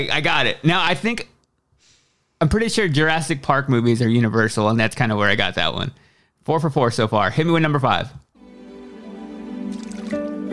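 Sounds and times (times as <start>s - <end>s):
speech: 0.0s - 1.3s, 2.4s - 8.2s
water trickling and bubbling: 9.7s - 10.3s.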